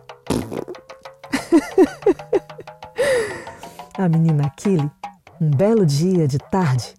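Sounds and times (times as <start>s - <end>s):
cartoon fart sound effect: 0.2s - 1.0s
laughter: 1.3s - 3.5s
speech: 1.5s - 2.4s, 4.0s - 6.9s.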